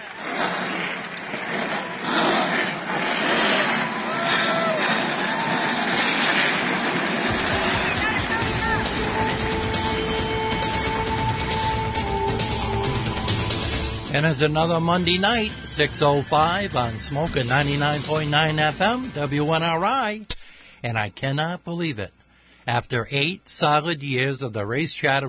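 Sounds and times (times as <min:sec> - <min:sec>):
race car engines starting and revving: 0:00.0 - 0:19.5
speech: 0:14.2 - 0:25.2.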